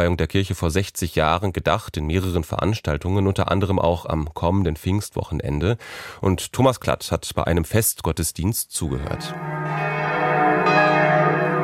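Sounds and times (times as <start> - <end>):
speech: 0.0 - 9.9
church bells calling to prayer in northwest Berlin: 9.1 - 11.6.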